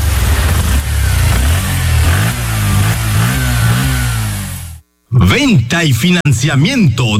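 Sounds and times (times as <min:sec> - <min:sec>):
sport motorcycle engine revving: 0:00.0 - 0:04.8
speech: 0:05.4 - 0:07.1.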